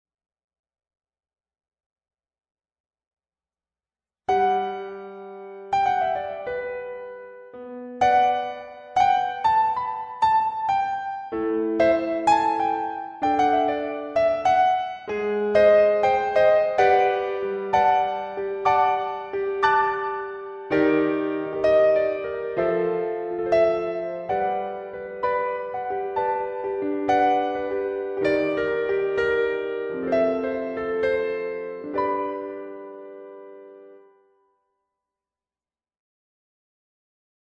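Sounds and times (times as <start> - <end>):
lounge piano: 4.3 - 34.7.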